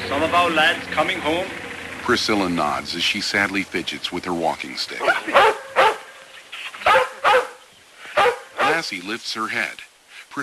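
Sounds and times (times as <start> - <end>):
speech: 0.2 - 5.6, 8.8 - 10.4
collie barking: 5.0 - 6.2, 6.8 - 8.9.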